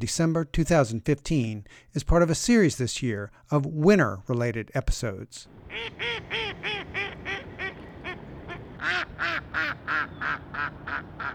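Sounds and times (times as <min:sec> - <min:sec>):
speech: 0:00.0 - 0:06.9
mallard ducks quacking on a December day: 0:05.6 - 0:11.3.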